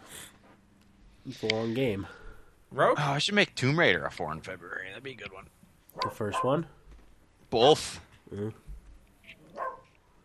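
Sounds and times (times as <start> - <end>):
speech: 1.3 - 6.8, 7.5 - 8.6
single short dog bark: 6.0 - 6.7, 9.5 - 9.9.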